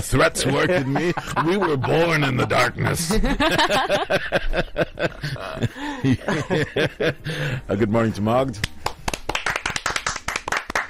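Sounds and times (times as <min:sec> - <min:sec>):
speech: 0:00.0 - 0:08.8
laughter: 0:00.2 - 0:07.4
several people clapping their hands: 0:08.6 - 0:10.8.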